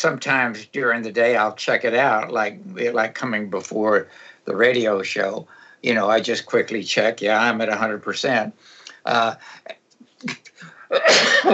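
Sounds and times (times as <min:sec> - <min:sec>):
speech: 0:00.0 - 0:11.5
faint breathy sounds: 0:04.1 - 0:04.5, 0:05.4 - 0:05.9, 0:08.6 - 0:09.8
person sneezing: 0:10.4 - 0:11.5.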